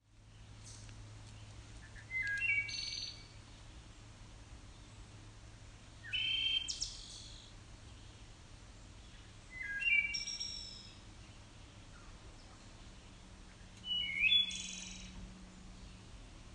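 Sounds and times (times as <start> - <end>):
wood thrush singing: 0.6 - 3.7, 6.0 - 8.2, 9.0 - 15.2.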